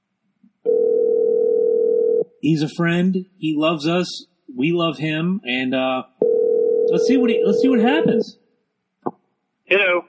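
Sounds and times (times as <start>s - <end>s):
telephone dial tone when placing a call: 0.7s - 2.2s, 6.2s - 7.8s
speech: 2.4s - 6.1s, 6.9s - 8.4s, 9.7s - 10.0s.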